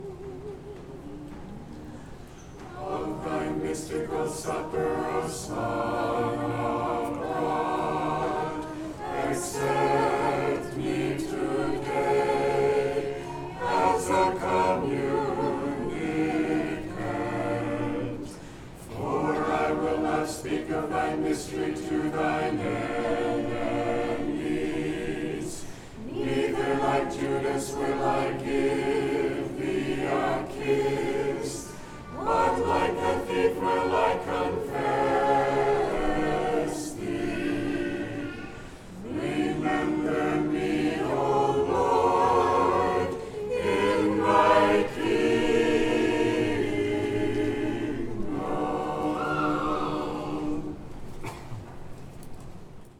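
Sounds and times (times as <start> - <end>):
choir singing: 0.0 - 51.4.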